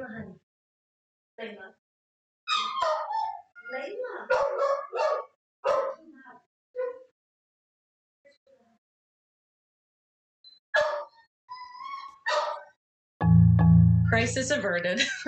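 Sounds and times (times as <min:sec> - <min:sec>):
dog whining and crying to go outside: 0:02.5 - 0:03.7, 0:10.8 - 0:12.7
dog yipping: 0:02.5 - 0:06.0, 0:06.8 - 0:07.1, 0:10.8 - 0:12.8
speech: 0:14.2 - 0:15.2
laughter: 0:14.9 - 0:15.2.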